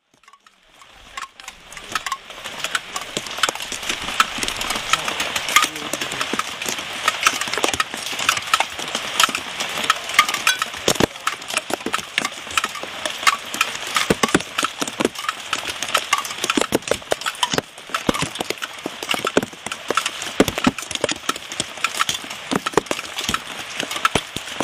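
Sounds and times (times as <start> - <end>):
rain in Koenji: 0.0 - 24.6.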